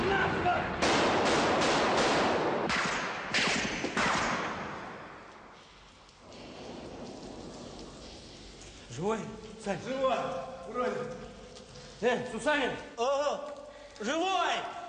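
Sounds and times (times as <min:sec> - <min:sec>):
gunshots: 0:00.0 - 0:05.2
speech: 0:09.1 - 0:11.2, 0:12.0 - 0:14.8.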